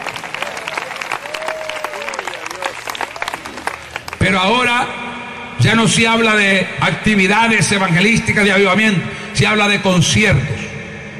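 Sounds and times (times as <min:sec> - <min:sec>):
audience applauding with dense clapping: 0:00.0 - 0:04.4
speech: 0:04.3 - 0:05.0, 0:05.6 - 0:10.5.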